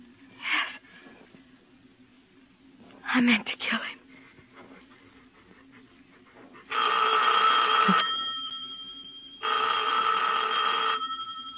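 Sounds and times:
speech: 3.1 - 4.0
telephone bell ringing: 6.7 - 11.5.

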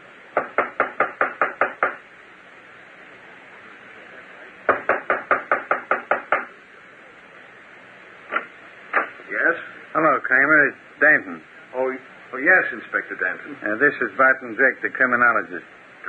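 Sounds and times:
faint hiss: 0.0 - 16.0
knocking on a door: 0.4 - 2.0, 4.7 - 6.5
speech: 12.6 - 15.8.

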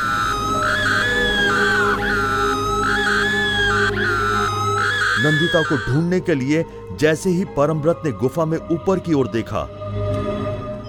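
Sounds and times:
woman screaming continuously: 0.0 - 5.8
speech: 5.2 - 9.8.

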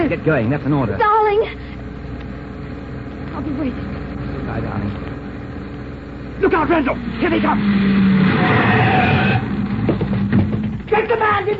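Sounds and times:
cable car motors starting and running atop a mountain in Switzerland: 0.0 - 11.5
speech: 0.1 - 1.6, 3.4 - 5.2, 6.4 - 11.5.

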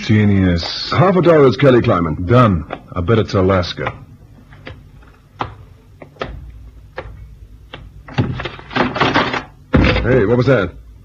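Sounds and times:
speech: 0.0 - 4.0, 10.2 - 10.8
wooden trap door thudding and slamming shut: 8.1 - 10.3.

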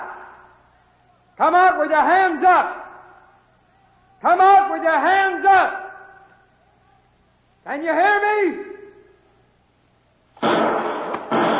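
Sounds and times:
speech: 1.4 - 2.8, 4.2 - 5.8, 7.6 - 8.7
gunshots fired wildly from a lower window: 10.4 - 11.5.

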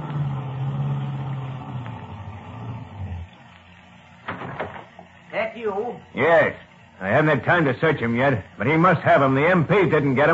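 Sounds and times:
car engine humming as the car pulls up and stops: 0.0 - 5.0
speech: 5.4 - 10.3.

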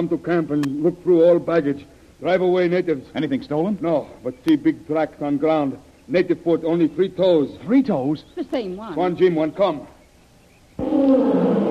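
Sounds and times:
speech: 0.0 - 10.0
tiger roaring: 10.8 - 11.7.

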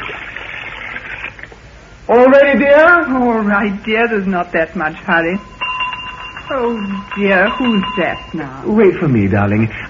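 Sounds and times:
hot steaming water splashing and swirling in a bathtub: 0.0 - 1.6
speech: 2.1 - 5.5, 6.5 - 9.8.

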